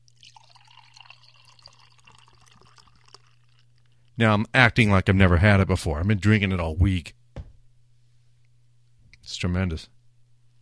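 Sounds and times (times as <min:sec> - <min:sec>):
beer poured from a can into a glass: 0:00.0 - 0:03.9
faint constant low hum: 0:00.0 - 0:10.5
speech: 0:04.2 - 0:07.2, 0:09.3 - 0:10.0.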